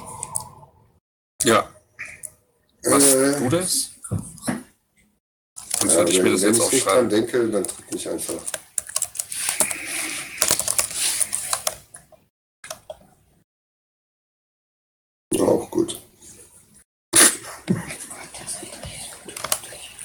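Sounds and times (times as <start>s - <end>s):
speech: 1.5s - 1.7s, 2.9s - 4.6s, 6.0s - 8.7s
typing on a computer keyboard: 8.4s - 9.8s, 10.4s - 11.8s, 19.3s - 19.7s.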